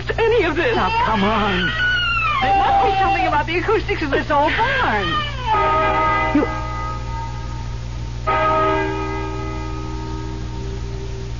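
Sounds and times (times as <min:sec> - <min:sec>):
steady low hum: 0:00.0 - 0:11.3
speech: 0:00.2 - 0:06.6
church bell striking the hour: 0:05.5 - 0:11.3.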